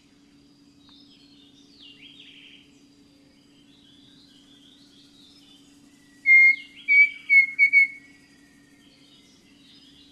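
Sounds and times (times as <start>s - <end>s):
faint steady low hum: 0.0s - 10.1s
pavonine cuckoo whistled song in eastern lowland Ecuador: 6.1s - 8.8s.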